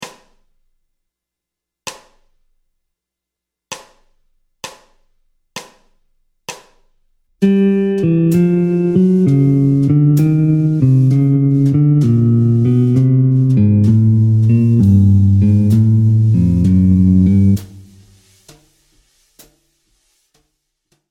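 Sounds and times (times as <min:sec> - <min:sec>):
jazz guitar playing a descending bebop scale in G harmonic minor: 0:07.4 - 0:18.0.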